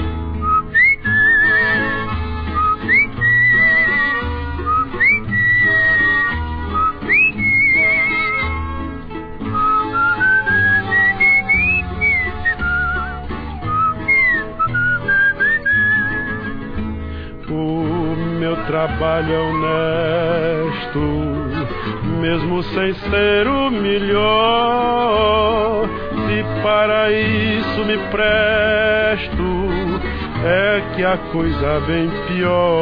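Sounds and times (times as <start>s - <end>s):
full musical accompaniment of steady rhythmic instruments: 0.0s - 32.8s
person whistling a melody: 0.4s - 8.8s, 9.5s - 16.7s, 18.3s - 21.8s
speech: 31.0s - 32.8s.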